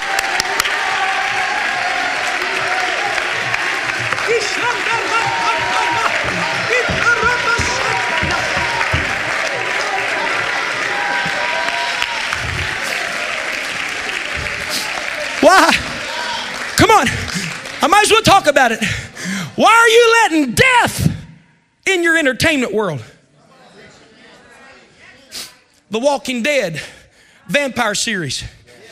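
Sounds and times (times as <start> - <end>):
audience shouts and whoops: 0.0 - 16.6
large audience clapping: 0.0 - 19.4
speech: 17.8 - 21.1, 21.9 - 23.1, 25.9 - 28.6.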